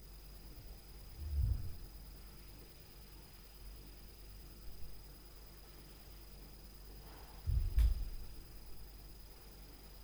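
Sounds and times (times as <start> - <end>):
noise from upstairs at night: 0.4 - 3.8, 4.4 - 9.6.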